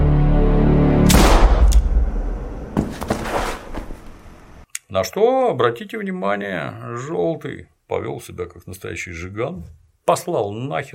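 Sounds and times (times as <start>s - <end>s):
gunshot in a TV drama scene: 1.1s - 3.0s
bangs and clattering bursts: 2.6s - 4.1s
speech: 5.0s - 10.9s.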